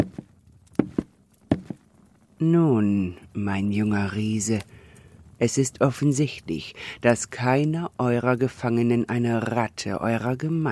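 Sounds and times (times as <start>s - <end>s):
slow deliberate footsteps on a hard floor: 0.0s - 1.8s
speech: 2.4s - 4.8s, 5.4s - 10.7s.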